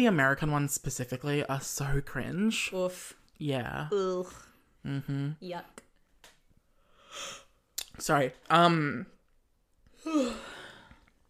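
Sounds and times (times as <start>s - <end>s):
speech: 0.0s - 5.8s, 7.1s - 7.4s, 8.0s - 9.1s, 10.0s - 10.6s
person yawning: 10.0s - 10.9s.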